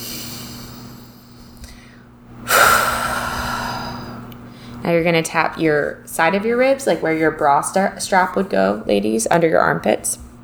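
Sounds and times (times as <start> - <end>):
deep breath during a guided self-tapping exercise: 0.0 - 4.8
speech: 4.8 - 10.2.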